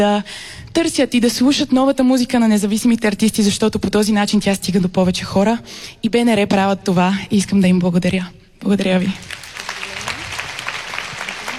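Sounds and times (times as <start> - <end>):
speech: 0.0 - 9.4
audience applause at a music event on stage: 9.2 - 11.5.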